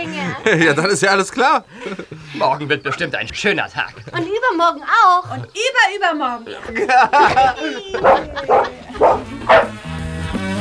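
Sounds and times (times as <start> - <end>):
laughter: 0.0 - 9.8
speech: 0.3 - 9.7
dog barking: 7.2 - 9.8.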